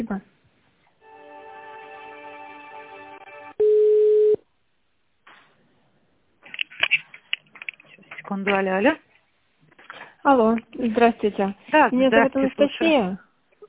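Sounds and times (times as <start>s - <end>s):
speech: 0.0s - 0.4s, 8.3s - 9.1s, 10.2s - 13.6s
buzzy telephone line tone while a call is being connected: 1.9s - 4.4s
pure telephone beep: 3.6s - 4.4s.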